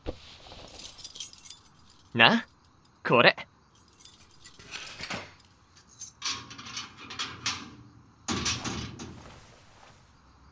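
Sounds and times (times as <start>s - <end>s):
bunch of school building keys jangling: 0.7s - 3.0s, 3.7s - 7.7s
speech: 2.2s - 3.5s.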